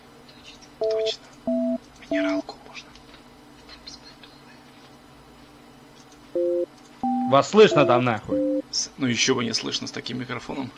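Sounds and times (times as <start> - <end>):
speech: 0.4 - 1.2, 7.3 - 10.7
telephone tone while dialing a call: 6.4 - 8.6.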